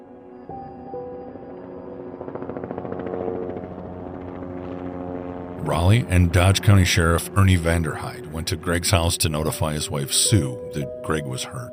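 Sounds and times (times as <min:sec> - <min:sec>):
loud medical helicopter engine whine: 0:00.0 - 0:11.7
medical helicopter rotor thumping: 0:02.2 - 0:09.2
speech: 0:05.6 - 0:11.7.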